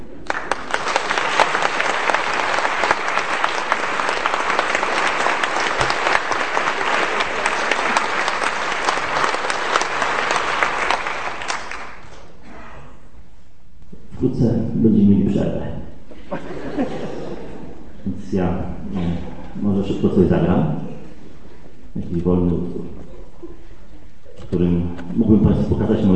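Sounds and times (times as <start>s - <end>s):
large audience applause: 0.0s - 12.2s
speech: 14.3s - 17.0s, 18.0s - 20.8s, 22.0s - 23.0s, 24.5s - 26.1s
laughter: 16.1s - 18.0s.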